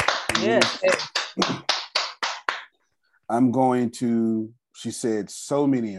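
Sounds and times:
audience hand clapping: 0.0 - 2.8
speech: 0.4 - 1.7, 3.3 - 5.9.

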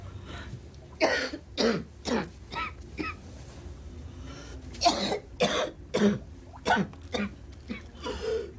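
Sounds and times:
woman coughing while walking through her apartment with a cigarette: 1.0 - 3.2, 4.8 - 7.3.

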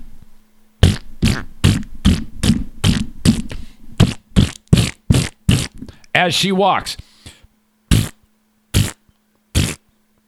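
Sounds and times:
voice imitating a woman's loose, rumbling farts: 0.8 - 5.9, 7.2 - 10.2
speech: 6.2 - 7.0.

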